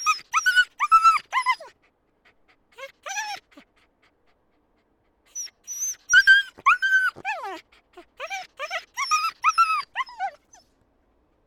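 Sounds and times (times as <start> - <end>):
dog yelping and whimpering with high-pitched cries: 0.0 - 1.9, 2.8 - 3.9, 5.3 - 10.6.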